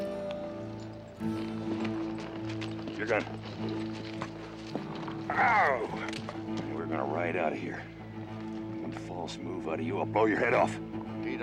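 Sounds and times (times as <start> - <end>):
hoof thuds and shuffling steps of horses as riders dismount: 1.2 - 6.9
speech: 3.0 - 4.3, 5.3 - 8.0, 8.9 - 11.4.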